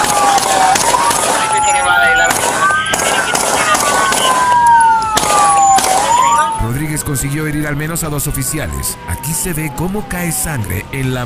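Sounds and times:
gunfire during a police shootout with a criminal: 0.0s - 6.6s
dense noise: 0.0s - 11.2s
loud continuous wavering high tone: 1.4s - 6.8s
speech: 7.1s - 11.2s.

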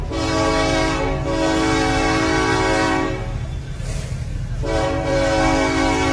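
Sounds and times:
locomotive horn blaring in long sustained blasts at a crossing: 0.0s - 3.5s, 4.6s - 6.1s
low rumble of a train at a crossing: 0.0s - 6.1s.

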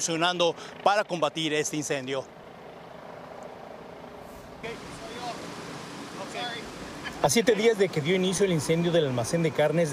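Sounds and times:
speech: 0.0s - 2.4s, 4.6s - 5.0s, 6.4s - 9.9s
firefighters' water cannons spraying on a meat warehouse fire: 4.2s - 9.9s.

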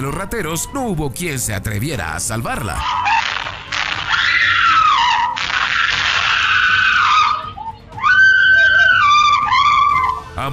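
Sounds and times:
speech: 0.0s - 3.4s, 10.4s - 10.5s
woman screaming: 3.9s - 10.3s.

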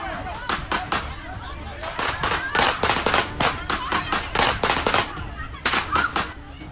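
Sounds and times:
voices murmuring: 0.0s - 6.7s
gunshots at a party: 0.4s - 1.1s, 1.8s - 6.4s.

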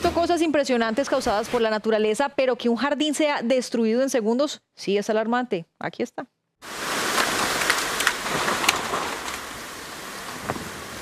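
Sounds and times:
speech: 0.2s - 6.8s
heavy rain in a storm in Douglas County Colorado: 6.6s - 10.9s.

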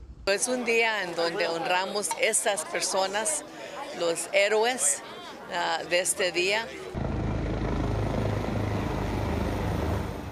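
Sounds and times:
speech: 0.3s - 7.0s
helicopters flying overhead at a remembrance event in the United States: 6.7s - 10.2s.

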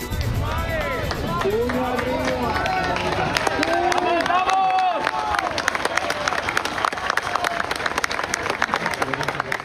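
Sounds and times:
many voices shouting and cheering: 0.2s - 7.8s
crowd clapping: 0.2s - 9.6s.

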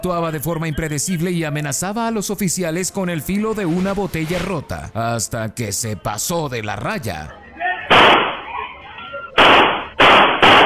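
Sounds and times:
speech: 0.0s - 7.4s
gunshots as a police officer fires at an armed man: 7.9s - 8.5s, 9.4s - 10.6s.

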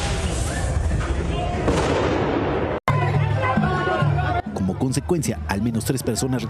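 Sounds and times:
firework rockets exploding at a protest: 0.0s - 2.8s
crowd noise at a protest: 0.0s - 6.4s
speech: 4.8s - 6.4s.

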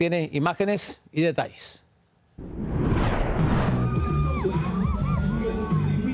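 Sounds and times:
speech: 0.0s - 1.8s
dense street crowd of fans cheering and shouting: 3.6s - 6.1s.

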